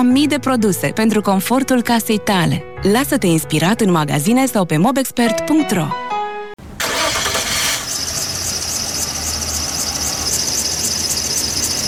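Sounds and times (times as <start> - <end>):
speech: 0.0 - 6.0
car engine cranking with a high whining squeal but failing to start: 6.8 - 11.8.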